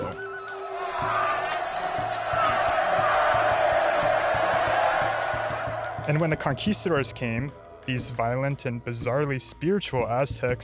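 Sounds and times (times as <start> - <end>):
large crowd of onlookers roaring and yelling: 0.0 - 7.9
faint rhythmic low thumps: 0.0 - 10.6
speech: 6.1 - 10.6.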